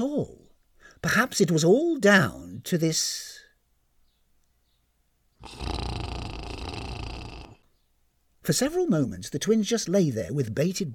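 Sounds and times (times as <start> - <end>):
speech: 0.0 - 0.4, 1.0 - 3.3, 5.4 - 5.8, 8.5 - 10.9
woman snoring asleep in bed: 5.4 - 7.7.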